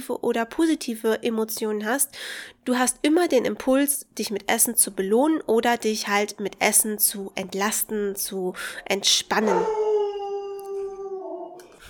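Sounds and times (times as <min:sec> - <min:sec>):
speech: 0:00.0 - 0:09.9
agitated dog howling: 0:09.4 - 0:11.7.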